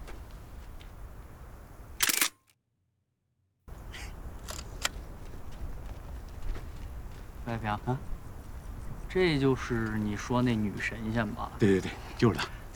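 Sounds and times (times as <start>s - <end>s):
camera shutter clicks as a photo is taken: 2.0s - 2.5s
speech: 7.5s - 8.2s, 9.2s - 12.7s.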